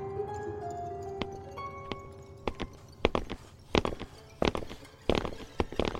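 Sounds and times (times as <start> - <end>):
faint steady tones ringing: 0.0 - 5.9
hard echoing footsteps underground: 1.2 - 5.9.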